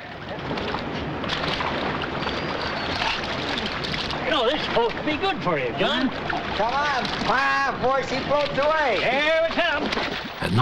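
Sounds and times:
river water splashing as a man douses himself at a river's edge: 0.0 - 10.6
speech: 4.8 - 10.6.

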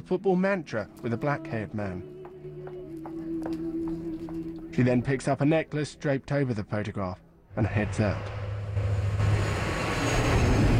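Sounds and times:
speech: 0.0 - 2.2, 4.8 - 8.4
airplane landing on a runway: 7.6 - 10.7.

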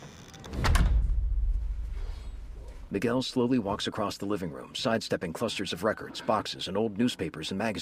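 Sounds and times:
door closing with a soft thud: 0.0 - 2.9
low rumbling room tone: 0.2 - 3.9
speech: 2.9 - 7.8.

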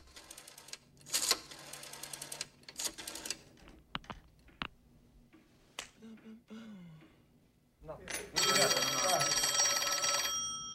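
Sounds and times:
loud continuous telephone bell ringing: 8.4 - 10.7.

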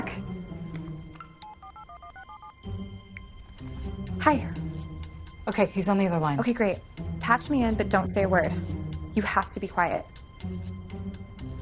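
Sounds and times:
telephone touch-tone dialing beeps: 1.2 - 2.7
telephone line noise: 1.2 - 2.8
speech: 4.2 - 4.6, 5.5 - 10.7.

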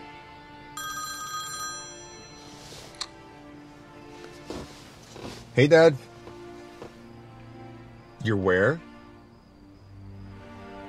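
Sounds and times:
mobile phone ringing with an electronic ringtone: 0.8 - 3.0
speech: 5.6 - 6.1, 8.2 - 8.9.

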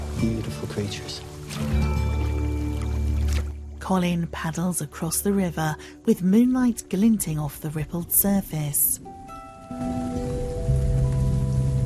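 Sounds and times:
raindrops falling in daytime on leaves and flower heads: 0.0 - 2.8, 9.6 - 11.8
speech: 0.2 - 2.1, 3.9 - 10.1
low hums: 1.7 - 11.8.

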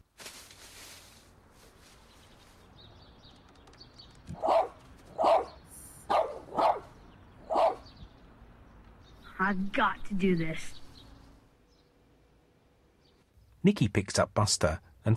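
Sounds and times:
dog barking: 4.3 - 7.9
speech: 9.5 - 10.8, 13.6 - 15.1.

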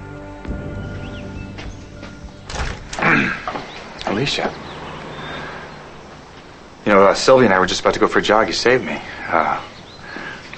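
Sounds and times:
speech: 0.5 - 0.9, 4.2 - 4.7, 6.9 - 9.7
front door rattling scrape as it swings wide: 2.4 - 4.4
front door latch and frame knocks and thuds: 2.5 - 3.1.

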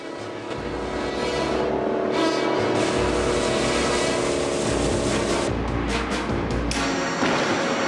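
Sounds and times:
car engines roaring speeding along a beach in a pursuit: 0.0 - 7.8.

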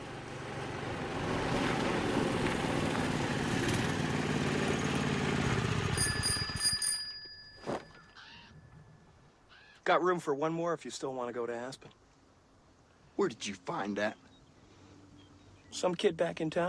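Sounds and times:
tiny wobbly scooter small engine buzzing: 0.0 - 6.6
bell-like dings: 5.9 - 9.1
speech: 9.9 - 12.0, 13.2 - 14.2, 15.7 - 16.6.

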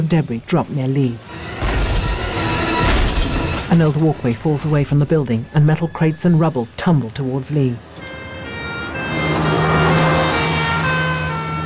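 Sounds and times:
speech: 0.0 - 1.3, 3.7 - 7.9
rumbling traffic: 0.0 - 11.6
ambulance siren wailing: 7.8 - 11.6.

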